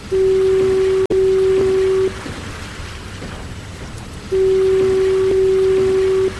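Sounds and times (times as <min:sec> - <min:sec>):
automated electric lighthouse fog signal horn blasts: 0:00.0 - 0:02.2, 0:04.3 - 0:06.3
soft rain-like hiss: 0:00.0 - 0:06.3.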